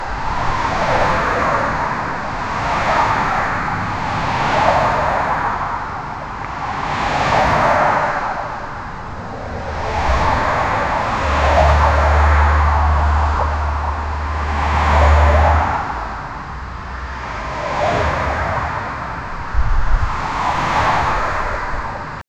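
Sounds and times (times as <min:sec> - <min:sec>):
German autobahn traffic ambience: 0:00.0 - 0:22.2.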